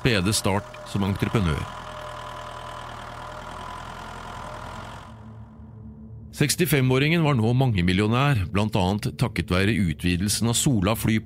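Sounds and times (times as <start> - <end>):
speech: 0.0 - 1.8, 6.4 - 11.2
tractor engine idling and chugging: 0.0 - 5.8.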